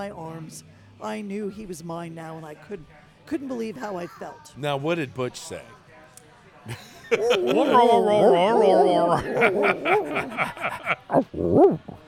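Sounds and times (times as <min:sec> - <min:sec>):
speech: 0:00.0 - 0:05.8, 0:06.6 - 0:12.0
laughter: 0:06.7 - 0:11.9
small puppy whining: 0:07.2 - 0:10.3, 0:11.0 - 0:12.0.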